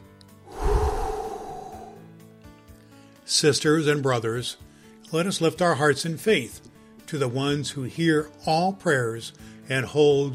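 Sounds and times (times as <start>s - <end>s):
long deep breath taken before a prayer: 0.5s - 2.0s
speech: 3.3s - 10.3s.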